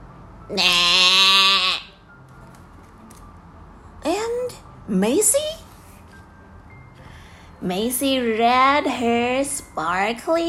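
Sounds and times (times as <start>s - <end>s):
speech: 0.5s - 0.9s, 4.9s - 5.6s, 7.6s - 10.4s
person's voice imitating a horse neighing: 0.5s - 1.9s.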